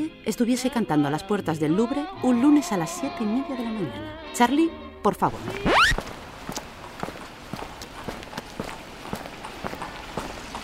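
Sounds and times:
speech: 0:00.0 - 0:06.0
footsteps of a man walking with a small toolbox: 0:05.4 - 0:10.6.

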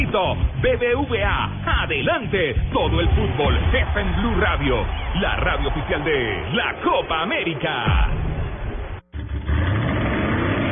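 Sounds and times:
speech: 0:00.1 - 0:08.3
engine revving: 0:09.1 - 0:10.7.

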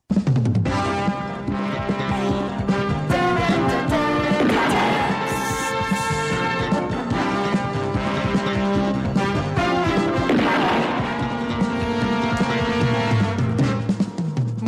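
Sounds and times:
loud driving police TV series opening theme: 0:00.0 - 0:14.6
sharp crashing gunshot bangs mixed into the music: 0:04.2 - 0:05.9, 0:10.2 - 0:12.5.

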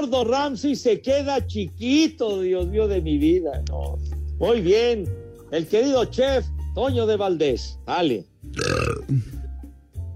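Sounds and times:
speech: 0:00.0 - 0:09.4
loud drawn-out burp: 0:08.5 - 0:09.5.

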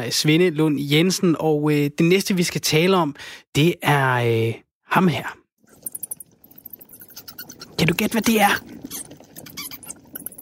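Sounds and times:
speech: 0:00.0 - 0:05.4, 0:07.8 - 0:09.1
high shrill bat squeaks: 0:06.0 - 0:07.8, 0:08.8 - 0:10.4.

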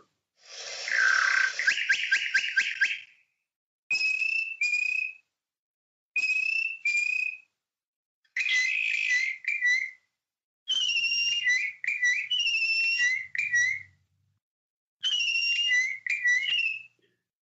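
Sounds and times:
two male bokmakierie bushshrikes singing a duet: 0:00.5 - 0:03.2, 0:03.9 - 0:05.3, 0:06.2 - 0:07.5, 0:08.4 - 0:10.1, 0:10.7 - 0:14.0, 0:15.0 - 0:17.0.

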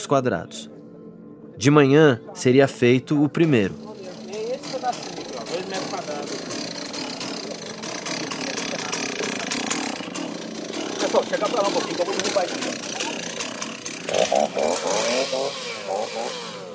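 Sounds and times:
speech: 0:00.0 - 0:00.8, 0:01.6 - 0:03.9, 0:11.1 - 0:13.0, 0:14.4 - 0:16.5
chainsaw running at excavation site: 0:03.4 - 0:16.7
indistinct voices murmuring: 0:03.5 - 0:16.7.

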